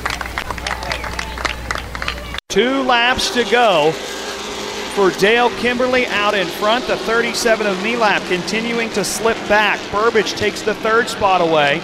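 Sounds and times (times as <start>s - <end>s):
crowd applauding at a racetrack for a driver's win: 0.0s - 2.4s
speech: 2.6s - 4.2s, 5.0s - 11.8s.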